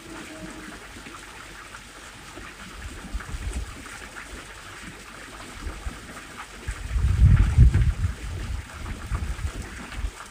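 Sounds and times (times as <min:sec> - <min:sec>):
wind blowing steadily outdoors: 0:06.8 - 0:10.1.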